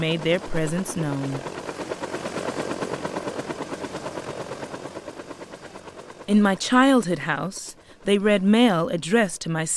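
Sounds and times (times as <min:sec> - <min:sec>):
speech: 0:00.0 - 0:01.7, 0:06.3 - 0:09.7
Huey military helicopter rotor thumping: 0:00.0 - 0:07.8.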